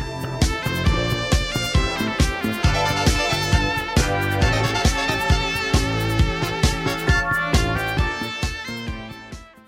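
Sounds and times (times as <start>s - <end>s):
steady driving drum beat: 0.0s - 9.5s
bright layered synthesizer tones: 0.8s - 9.0s.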